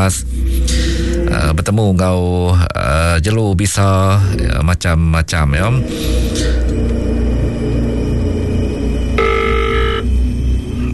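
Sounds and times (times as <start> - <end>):
speech: 0.0 - 6.6
steady low rumble: 0.0 - 10.9
telephone ringing: 9.2 - 10.1.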